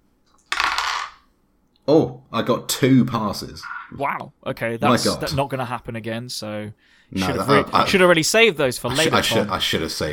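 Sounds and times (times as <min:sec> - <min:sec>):
three dice tumbling across a hard tabletop: 0:00.4 - 0:01.3
speech: 0:01.9 - 0:10.1.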